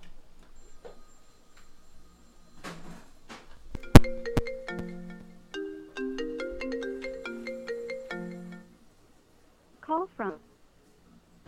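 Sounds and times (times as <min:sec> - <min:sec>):
phone ringtone for an incoming call: 0:03.8 - 0:08.8.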